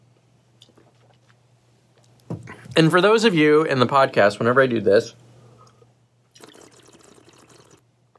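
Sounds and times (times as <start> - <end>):
speech: 2.8 - 5.2
air blown through water in a glass bubbling and gurgling: 6.4 - 7.8.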